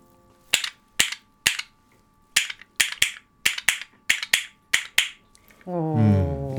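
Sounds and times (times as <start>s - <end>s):
red and blue North American beech wooden castanets clapping: 0.5s - 1.7s, 2.4s - 5.2s
speech: 5.6s - 6.5s.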